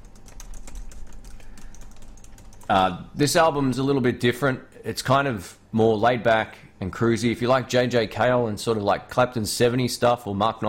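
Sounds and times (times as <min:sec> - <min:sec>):
typing on a computer keyboard: 0:00.0 - 0:02.8
speech: 0:02.7 - 0:10.6.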